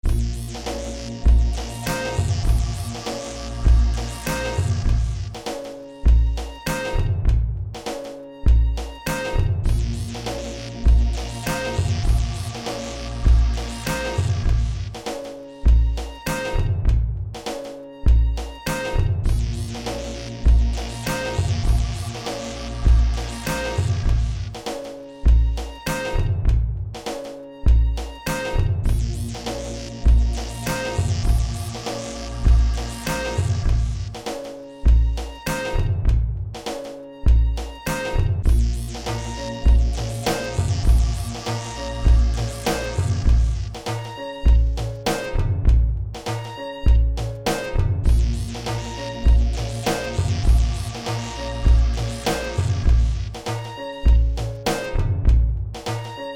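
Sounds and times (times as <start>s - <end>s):
m100 drum groove: 0.0s - 56.3s.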